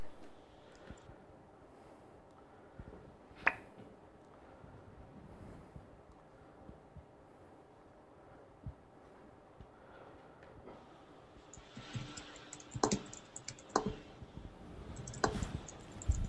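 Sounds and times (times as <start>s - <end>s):
keyboard typing while retyping a novel: 11.4s - 16.2s.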